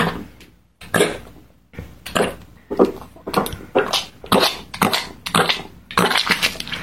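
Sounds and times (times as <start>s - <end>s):
cat vomiting: 2.1s - 6.8s.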